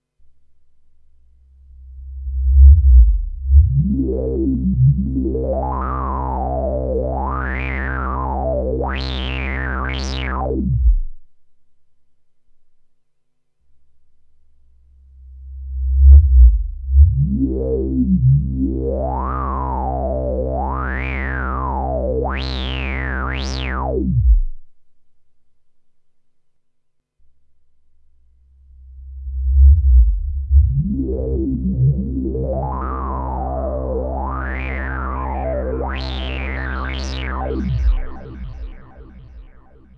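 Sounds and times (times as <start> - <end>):
synthesizer filter interpolation: 1.7 - 11.2, 15.4 - 24.6, 28.7 - 39.9.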